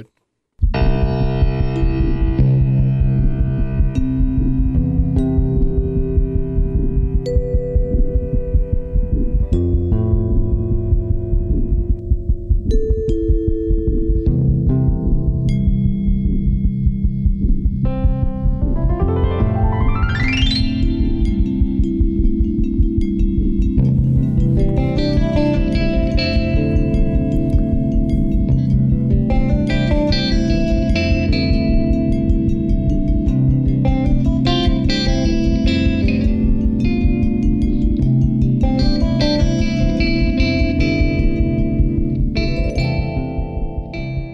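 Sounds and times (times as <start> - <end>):
speech: 0.0 - 0.2
strummed guitar chords in C: 0.7 - 44.3.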